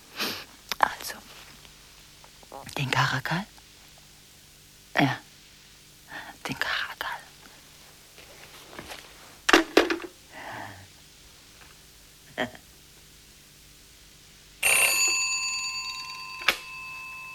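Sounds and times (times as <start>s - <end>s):
low hum: 0.0s - 17.3s
speech: 2.8s - 3.6s, 5.0s - 5.3s, 6.4s - 6.8s
telephone ringing: 14.6s - 17.3s.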